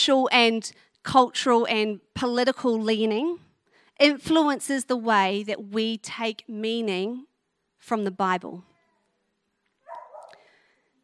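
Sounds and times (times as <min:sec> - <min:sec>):
speech: 0:00.0 - 0:08.7
dog barking: 0:09.8 - 0:10.4.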